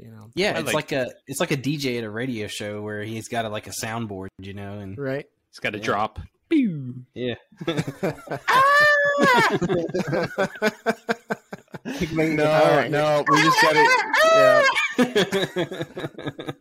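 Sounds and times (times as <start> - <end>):
speech: 0.4 - 16.5
person chuckling: 7.7 - 12.3, 14.0 - 16.5
person imitating a screaming goat: 8.5 - 9.5, 13.3 - 15.0.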